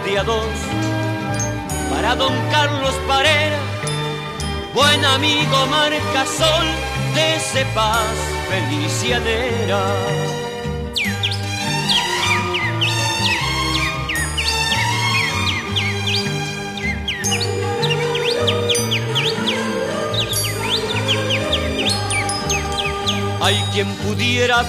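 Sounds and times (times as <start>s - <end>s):
birds chirping and whistling: 0.0s - 24.6s
instrumental music with a low, plodding bass: 0.0s - 24.6s
speech: 0.1s - 3.8s, 4.8s - 10.4s, 23.4s - 24.6s.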